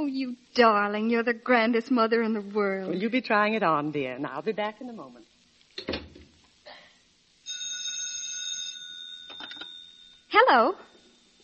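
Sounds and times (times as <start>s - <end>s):
speech: 0.0s - 6.0s, 10.3s - 10.9s
telephone ringing with electronic trill: 7.5s - 10.2s.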